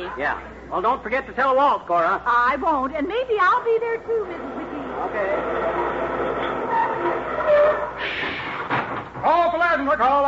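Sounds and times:
speech: 0.1 - 6.4, 9.2 - 10.2
streetcar braking to a stop with grinding rumble: 4.1 - 8.7
thin metallic squeals of streetcar brakes: 5.7 - 8.5.

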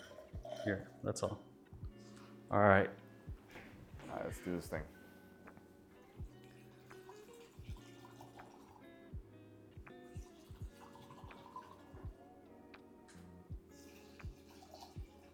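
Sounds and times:
speech: 0.6 - 1.5, 2.5 - 3.0, 4.1 - 5.0
liquor poured into a big cup without ice: 6.4 - 8.9, 10.1 - 12.0, 13.8 - 15.3.

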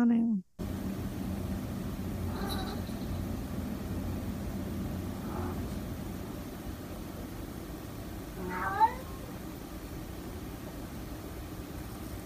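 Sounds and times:
steady low rumble like an engine or aircraft: 0.6 - 12.2
cat meowing: 2.3 - 2.9, 5.2 - 5.7, 8.3 - 9.4.

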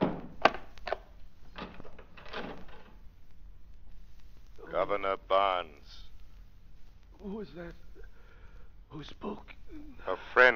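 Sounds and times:
wooden door thudding shut: 0.0 - 0.6
speech: 4.8 - 6.0, 7.2 - 7.8, 8.9 - 10.5.

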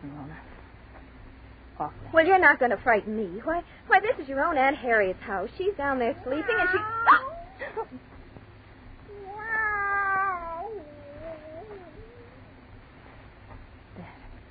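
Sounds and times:
speech: 1.8 - 7.3
cat yowling in a quiet house: 6.2 - 7.8, 9.1 - 12.6.

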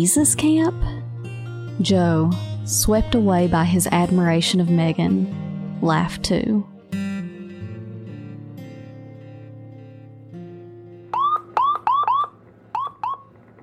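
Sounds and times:
speech: 0.0 - 1.1, 1.8 - 6.7
siren whooping: 11.2 - 13.4.

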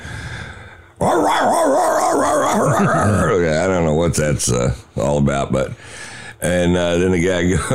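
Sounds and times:
man imitating excited drug-sniffing dogs yelping, whimpering and howling: 1.0 - 3.4
laughter: 2.1 - 3.5
speech: 2.6 - 7.7.

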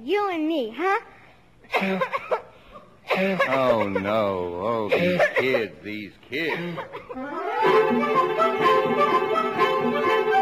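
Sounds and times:
speech: 0.0 - 2.4, 3.2 - 9.4
whooping-cough coughing with quick harsh hacks: 1.6 - 4.2, 4.8 - 5.8, 6.4 - 7.2.

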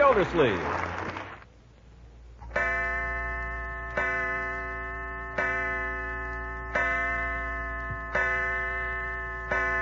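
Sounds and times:
faint low hum: 0.0 - 9.8
speech: 0.2 - 0.9
clock striking six o'clock with bell-like chimes: 2.5 - 9.8.

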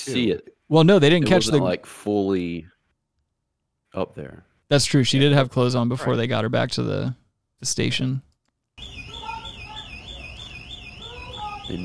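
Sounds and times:
speech: 0.0 - 2.7, 3.9 - 9.1, 11.7 - 11.8
building alarm with shrill high electronic warbling tone: 8.8 - 11.8.

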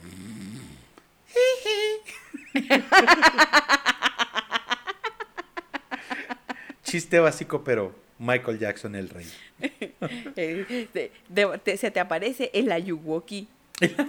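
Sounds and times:
voice imitating snoring: 0.0 - 1.0
laughter: 2.1 - 6.9
speech: 2.6 - 3.4, 6.9 - 14.0.

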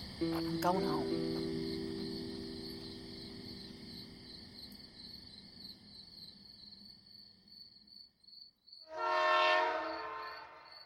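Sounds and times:
chorus of crickets: 0.0 - 10.8
speech: 0.2 - 1.6
freight train horn blast: 8.9 - 10.8.

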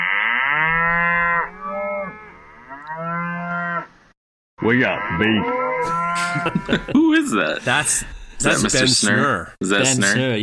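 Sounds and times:
cow mooing: 0.0 - 3.9, 4.8 - 6.6
speech: 4.6 - 10.4
laughter: 5.8 - 9.2.

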